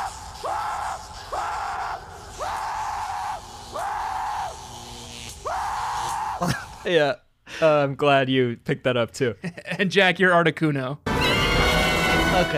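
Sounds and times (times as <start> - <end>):
person screaming loudly: 0.0 - 4.8, 5.4 - 6.9
speech: 6.4 - 11.0, 12.3 - 12.5.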